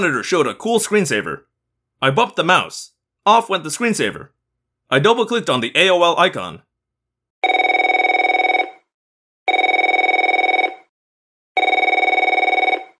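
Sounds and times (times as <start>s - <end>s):
speech: 0.0s - 6.7s
telephone ringing with rapid trilling bell tones: 7.4s - 8.9s, 9.5s - 10.9s, 11.6s - 12.9s.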